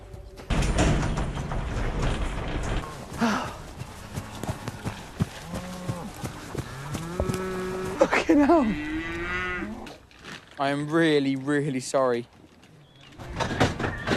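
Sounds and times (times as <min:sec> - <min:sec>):
cow hooves clopping and shuffling on hard ground: 0:00.0 - 0:14.1
rustling farmyard noise: 0:02.8 - 0:14.1
cows that have got out mooing: 0:03.8 - 0:10.0
speech: 0:08.4 - 0:08.9, 0:10.6 - 0:12.4.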